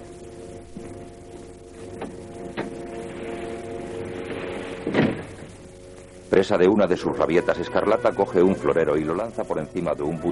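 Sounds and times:
steady low hum: 0.0s - 10.2s
door shut with a dull solid thud: 4.8s - 5.5s
speech: 6.3s - 10.2s.

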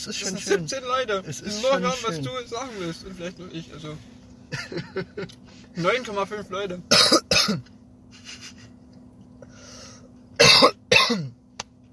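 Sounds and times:
speech: 0.0s - 8.4s, 10.6s - 11.3s
laughter: 4.5s - 5.4s, 8.1s - 8.8s
person coughing sharply and harshly: 6.9s - 7.7s, 10.4s - 11.4s.

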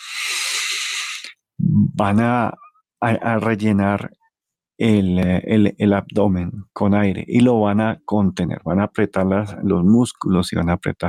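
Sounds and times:
forceful exhalation through the mouth during a breathing exercise: 0.0s - 1.4s
low voiced sound: 1.6s - 2.6s
speech: 2.0s - 4.2s, 4.8s - 11.0s.

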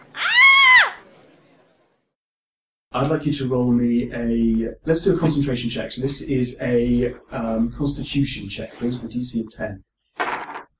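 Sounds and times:
voice imitating a woman's frightened shriek: 0.0s - 1.0s
speech: 3.0s - 9.9s.

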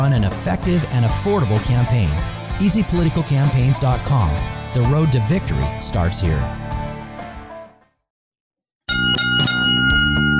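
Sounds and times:
speech: 0.0s - 6.7s
bell chimes: 8.9s - 10.3s.

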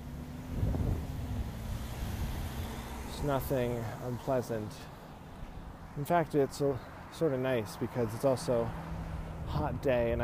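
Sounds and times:
wind rushing outdoors on a hot breezy day: 0.4s - 3.1s
speech: 3.2s - 4.9s, 6.0s - 8.9s, 9.5s - 10.2s.

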